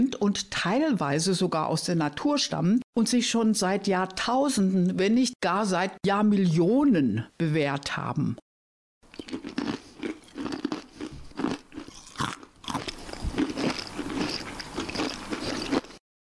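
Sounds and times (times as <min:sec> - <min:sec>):
speech: 0:00.0 - 0:08.4
uncooked spaghetti being bitten and chewed: 0:09.1 - 0:16.0.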